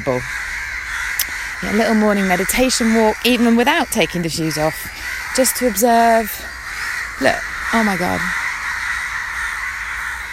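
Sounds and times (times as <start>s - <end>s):
speech: 0.0s - 0.5s, 1.6s - 6.6s, 7.2s - 8.4s
large flock of crows cawing in palm trees: 0.0s - 10.3s.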